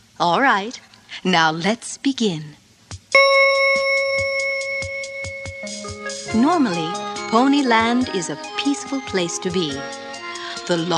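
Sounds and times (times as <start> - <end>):
speech: 0.2 - 3.4, 6.3 - 10.0, 10.7 - 10.9
bright bell-like chime: 3.2 - 7.4
second lower tone: 3.2 - 7.9.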